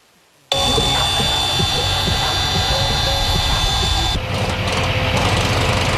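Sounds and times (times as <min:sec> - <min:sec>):
power tools running at a construction site: 0:00.5 - 0:05.9.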